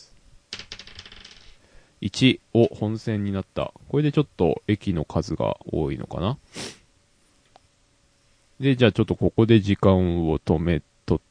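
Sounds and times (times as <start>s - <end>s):
small die clattering onto a hard surface: 0.5s - 1.6s
speech: 2.0s - 6.8s, 8.6s - 11.2s.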